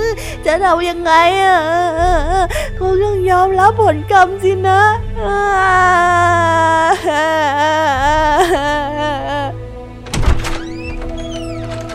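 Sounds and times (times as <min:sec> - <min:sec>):
speech: 0:00.5 - 0:09.6
wooden granary door creaking open: 0:10.0 - 0:11.9.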